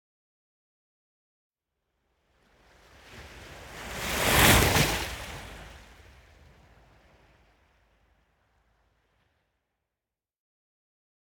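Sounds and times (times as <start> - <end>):
ocean surf lapping on the coast with medium faster waves: 2.4 - 7.8.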